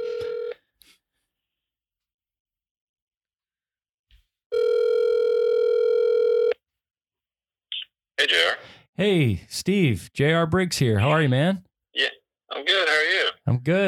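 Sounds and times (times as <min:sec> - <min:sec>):
short telephone dialing tones: 0:00.0 - 0:00.6, 0:04.5 - 0:06.6
speech: 0:08.3 - 0:13.8.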